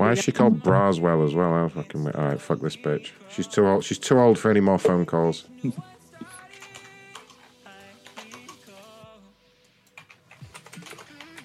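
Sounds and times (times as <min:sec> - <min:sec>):
speech: 0:00.1 - 0:05.9
typing on a computer keyboard: 0:06.4 - 0:07.4, 0:09.9 - 0:11.4.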